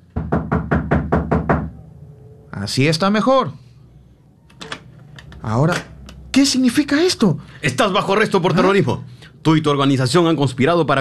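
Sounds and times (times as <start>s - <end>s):
heavy knocks on wooden door: 0.1s - 1.8s
speech: 2.6s - 3.6s, 5.4s - 11.0s.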